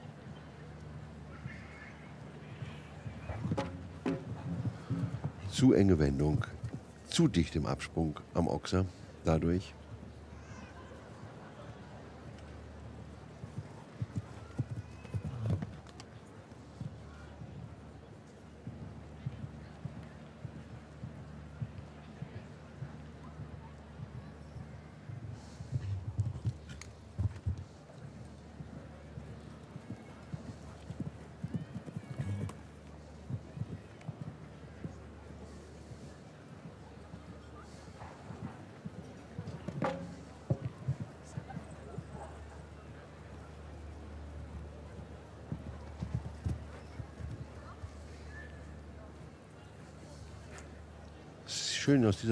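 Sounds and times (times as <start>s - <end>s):
voices or crowd murmur: 0.0s - 7.0s, 8.8s - 52.2s
horse hooves clip-clopping on firm ground: 2.5s - 5.6s, 12.3s - 24.2s, 25.2s - 51.3s
speech: 5.6s - 6.6s, 7.2s - 9.8s, 51.9s - 52.2s.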